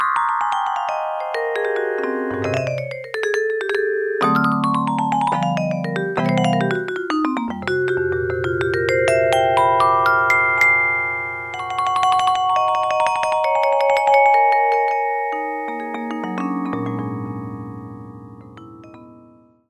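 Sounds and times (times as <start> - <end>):
hard vibraphone patch on Roland U-110 synthesizer: 0.2 - 17.7.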